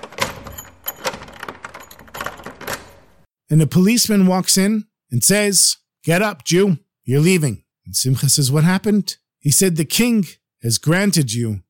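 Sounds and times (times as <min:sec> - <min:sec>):
rusty key turning in a heavy cell door lock: 0:00.0 - 0:03.3
speech: 0:03.5 - 0:11.6.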